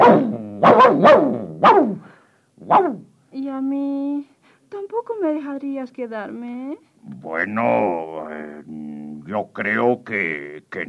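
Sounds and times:
dog barking fiercely: 0.0s - 3.1s
speech: 5.1s - 10.8s.

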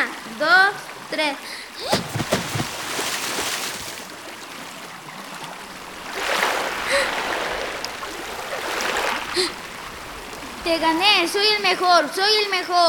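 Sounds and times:
speech: 0.3s - 2.2s, 10.7s - 12.8s
river water rushing heard from underwater: 1.7s - 11.0s.

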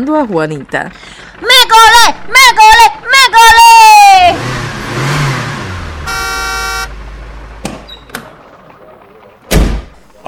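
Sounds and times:
speech: 0.0s - 3.6s
cookie delivery truck engine rumbling: 0.0s - 10.2s
cookie delivery truck horn blast: 4.4s - 7.4s
sharp clunks: 7.6s - 8.4s, 9.4s - 10.1s.

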